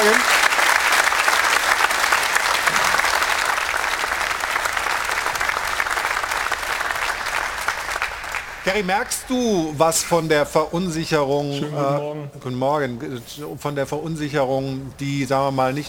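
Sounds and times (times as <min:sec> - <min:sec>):
crowd applauding: 0:00.0 - 0:10.4
speech: 0:08.7 - 0:15.8.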